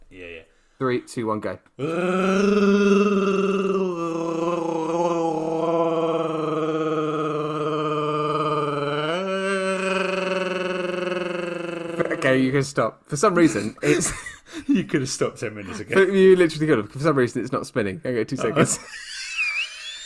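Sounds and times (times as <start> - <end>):
speech: 0.8 - 3.7, 12.4 - 19.0
voice imitating a long growling alien creature roar: 1.8 - 12.5
laughter: 15.7 - 16.2, 18.4 - 20.0.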